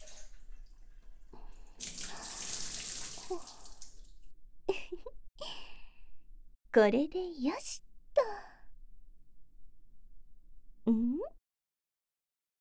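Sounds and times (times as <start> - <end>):
water splashing while rinsing soap foam off: 0.0 - 4.2
speech: 6.8 - 7.8, 10.9 - 11.4.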